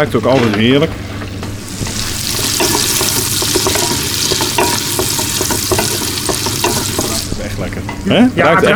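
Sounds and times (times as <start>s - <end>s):
speech: 0.0s - 1.1s, 7.6s - 8.7s
onions frying in a pan: 1.6s - 7.7s
light scraping and stirring clicks in a pan: 1.8s - 7.3s.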